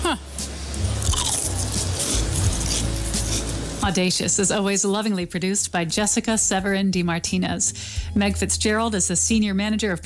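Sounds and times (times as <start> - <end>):
speech: 0.1 - 0.3, 3.8 - 10.0
crunchy steak-flavoured potato chip bitten and chewed: 0.9 - 3.5.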